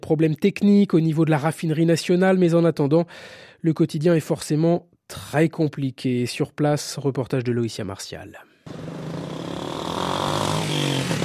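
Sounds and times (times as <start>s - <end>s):
speech: 0.1s - 9.1s
car engines idling and revving in a queue at a petrol station: 8.7s - 11.2s.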